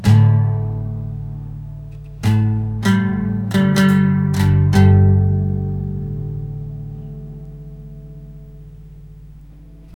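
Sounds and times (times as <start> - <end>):
acoustic guitar playing: 0.0 - 9.9.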